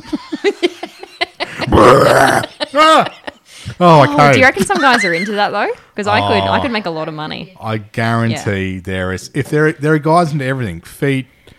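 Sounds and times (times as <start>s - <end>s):
speech: 0.0s - 0.7s, 1.8s - 3.1s, 3.8s - 11.4s
people laughing: 0.0s - 5.5s, 6.1s - 6.9s
long loud rumbling burp: 1.6s - 2.5s, 6.1s - 6.8s.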